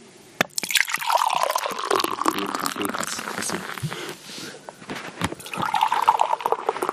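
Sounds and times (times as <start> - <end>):
dark beer pouring into a glass: 0.5 - 3.8, 5.4 - 6.9.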